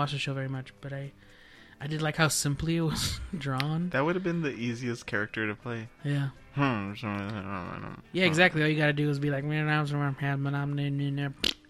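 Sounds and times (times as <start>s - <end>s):
speech: 0.0s - 11.6s
voice imitating fart noises: 6.6s - 8.4s, 11.4s - 11.6s.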